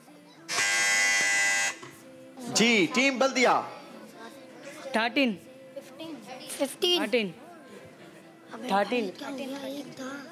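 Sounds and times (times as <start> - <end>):
loud harsh quiz show contestant buzzer: 0.5 - 1.9
faint voices murmuring: 1.9 - 10.2
speech: 2.6 - 3.8, 4.9 - 5.5, 6.6 - 7.4, 8.5 - 10.2.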